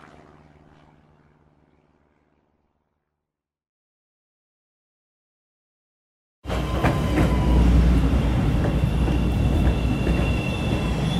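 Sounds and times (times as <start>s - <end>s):
moving subway train rumbling: 6.4s - 11.1s.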